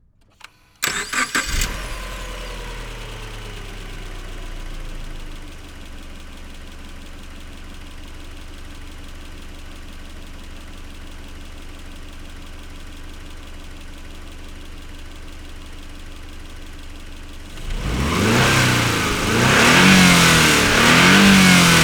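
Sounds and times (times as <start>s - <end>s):
Subaru Legacy 2.5 GT engine starting, idling and revving: 0.4s - 5.8s, 17.4s - 21.8s.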